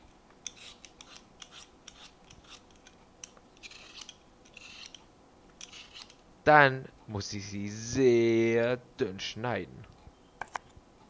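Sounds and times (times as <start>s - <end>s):
peeler scraping potatoes for homemade crisps: 0.0s - 6.2s
speech: 6.5s - 9.9s.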